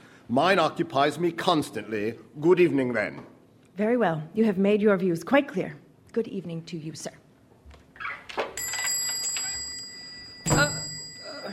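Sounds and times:
speech: 0:00.3 - 0:07.2
clock striking seven o'clock with resonant chimes: 0:08.6 - 0:11.5.

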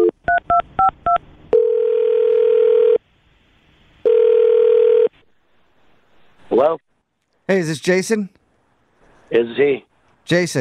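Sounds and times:
long steady phone ringing tones: 0:00.0 - 0:03.0, 0:04.0 - 0:05.1
speech: 0:07.5 - 0:08.4, 0:09.3 - 0:10.6.

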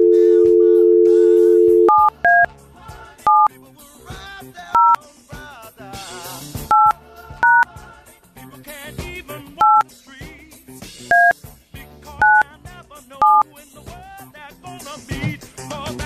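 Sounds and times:
telephone dial tone: 0:00.0 - 0:02.5, 0:12.2 - 0:12.4
telephone touch-tone beeps as a number is dialed: 0:00.0 - 0:02.5, 0:03.3 - 0:03.5, 0:04.8 - 0:05.0, 0:06.7 - 0:07.6, 0:09.6 - 0:09.8, 0:11.1 - 0:11.3, 0:12.2 - 0:12.4, 0:13.2 - 0:13.4.

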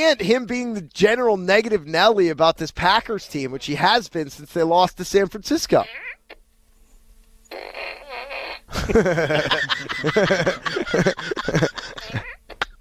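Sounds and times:
speech: 0:00.0 - 0:06.2, 0:07.5 - 0:08.0, 0:08.8 - 0:12.0
short buzzy hiss of a novelty fart gun: 0:00.0 - 0:12.7
sputtering fart noise from a novelty fart gun: 0:07.5 - 0:08.8
laughter: 0:08.7 - 0:12.7.

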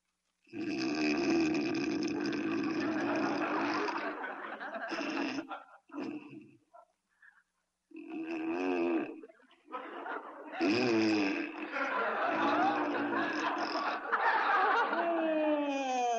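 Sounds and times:
man snoring in an exaggerated comic way in bed: 0:00.5 - 0:04.0, 0:04.9 - 0:06.4, 0:08.0 - 0:09.2, 0:10.6 - 0:11.8, 0:12.4 - 0:14.0
laughter: 0:02.5 - 0:06.2, 0:09.2 - 0:15.8.

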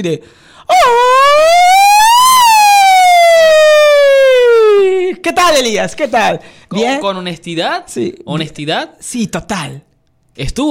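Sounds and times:
speech: 0:00.0 - 0:01.6, 0:05.2 - 0:10.6
high-pitched mariachi grito shout: 0:00.7 - 0:05.2.

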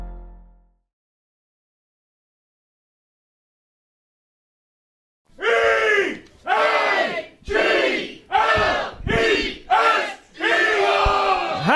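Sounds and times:
loud bar crowd chanting a football cheer in unison: 0:05.4 - 0:11.7.

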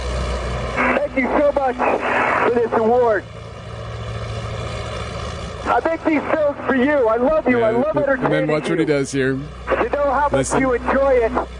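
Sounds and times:
propeller airplane engine droning in flight: 0:00.0 - 0:11.5
speech: 0:01.2 - 0:03.4, 0:05.8 - 0:11.5.

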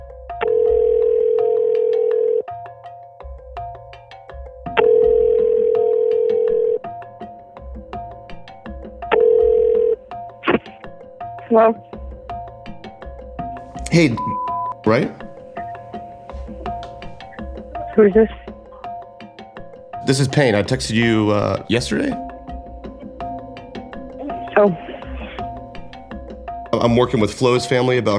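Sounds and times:
outgoing phone call ringing tone: 0:00.4 - 0:02.5, 0:04.8 - 0:06.9, 0:09.1 - 0:10.0
phone line connecting clicks and tones: 0:00.4 - 0:02.5, 0:04.8 - 0:06.8
speech: 0:11.5 - 0:11.9, 0:14.0 - 0:15.2, 0:18.0 - 0:18.4, 0:20.1 - 0:22.3, 0:24.6 - 0:24.9, 0:26.8 - 0:28.1.

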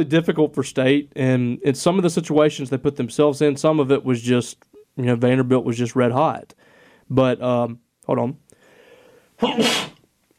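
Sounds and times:
speech: 0:00.0 - 0:08.4, 0:09.4 - 0:09.9
faint breathy intake: 0:06.6 - 0:07.1, 0:08.5 - 0:10.0
person sneezing: 0:09.4 - 0:10.0.

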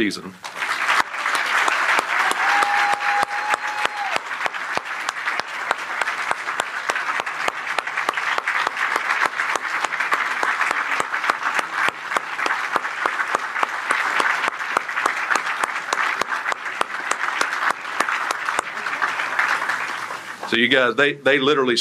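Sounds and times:
speech: 0:00.0 - 0:00.6, 0:20.6 - 0:21.8
large audience applause: 0:00.0 - 0:20.8
whistle or cheer from audience: 0:02.2 - 0:04.2.

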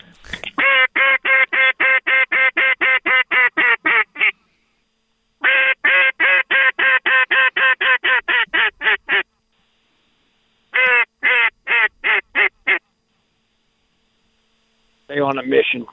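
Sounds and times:
duck call blown, quacking: 0:00.6 - 0:04.3, 0:05.4 - 0:09.3, 0:10.8 - 0:12.8
speech: 0:15.3 - 0:15.9.

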